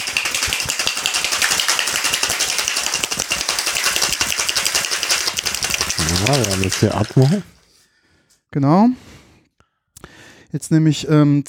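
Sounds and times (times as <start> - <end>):
metal cocktail shaker shaken hard with cube ice, vodka and coffee liqueur: 0.0 - 7.7
speech: 6.2 - 7.6, 8.5 - 9.1, 10.5 - 11.4.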